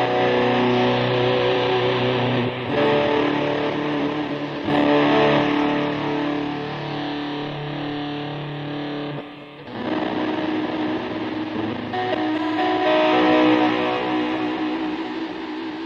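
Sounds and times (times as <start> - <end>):
distorted electric guitar with compressor, delay and micro synthesizer pedal playing chords: 0.0 - 15.8.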